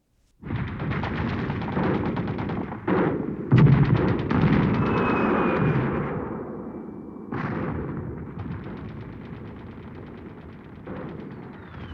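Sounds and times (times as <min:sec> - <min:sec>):
rapid gunfire at a war front line: 0:00.4 - 0:04.8, 0:07.4 - 0:11.9
booming explosions at a war front line: 0:00.4 - 0:11.9.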